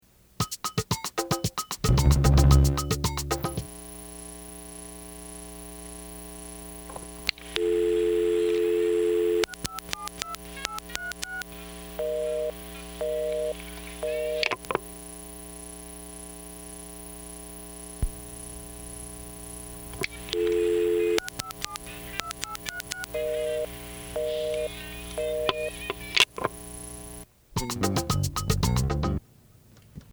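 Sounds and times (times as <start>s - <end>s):
drum machine: 0.4s - 3.7s, 21.2s - 26.2s, 27.6s - 29.2s
phone calls: 6.8s - 14.9s, 19.8s - 27.8s.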